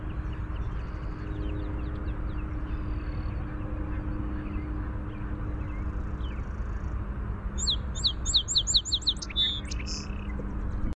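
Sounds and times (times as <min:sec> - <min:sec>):
song sparrow song: 0:00.0 - 0:10.9.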